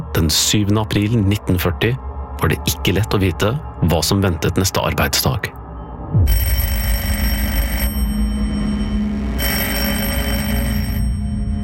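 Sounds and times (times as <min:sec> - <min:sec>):
speech: 0:00.3 - 0:06.7
telephone bell ringing at a home in Lysaker Norway: 0:06.3 - 0:11.6.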